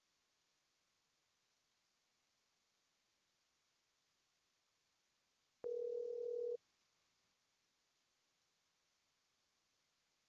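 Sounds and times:
telephone dial tone while a call is placed: 5.6 - 6.6.

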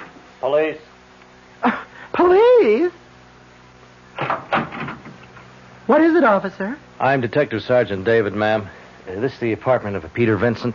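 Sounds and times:
faint room hum: 0.0 - 10.7
speech: 0.4 - 0.9, 5.9 - 10.7
door creaking open: 4.2 - 5.2
soft clunks and rattles of a door: 4.2 - 5.2.

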